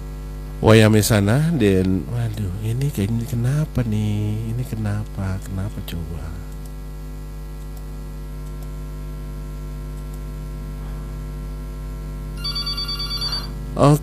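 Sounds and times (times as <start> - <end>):
steady electrical hum: 0.0 - 14.0
speech: 0.6 - 6.5, 13.8 - 14.0
incoming WhatsApp call ringtone: 12.4 - 13.6.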